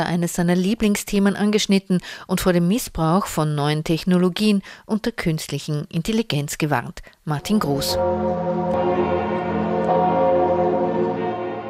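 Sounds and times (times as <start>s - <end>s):
speech: 0.0s - 10.1s
large cathedral bells of Notre Dame in France ringing: 7.5s - 11.6s.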